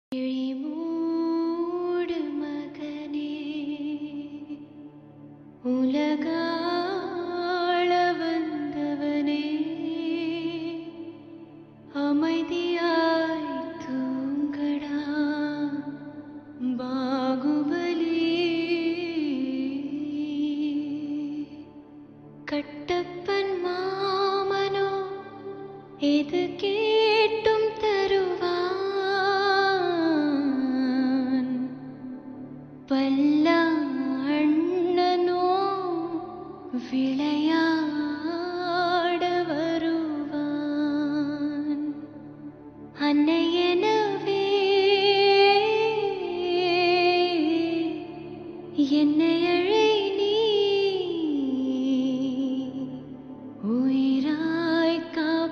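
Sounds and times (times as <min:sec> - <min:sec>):
Tamil sad song: 0:00.1 - 0:55.5.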